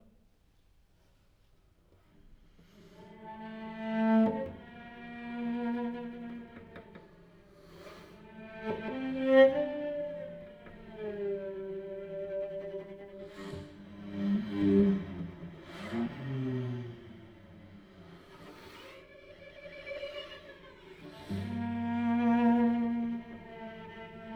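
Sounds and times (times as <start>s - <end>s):
cello: 1.0s - 24.3s.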